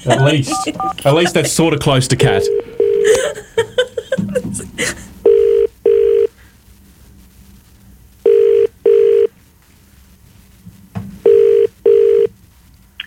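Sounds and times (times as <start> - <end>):
speech: 0.0 - 3.5, 4.5 - 5.1
laughter: 0.0 - 5.1
phone ringing through the line: 0.1 - 1.2, 2.2 - 3.4, 5.2 - 6.3, 8.2 - 9.3, 11.2 - 12.3
phone dialing beeps: 0.5 - 1.0, 2.3 - 3.1, 5.3 - 6.3, 8.3 - 9.3, 11.3 - 12.3.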